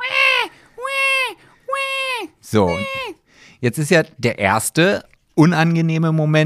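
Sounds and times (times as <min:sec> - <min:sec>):
voice imitating a crying baby: 0:00.0 - 0:03.2
speech: 0:02.5 - 0:06.4.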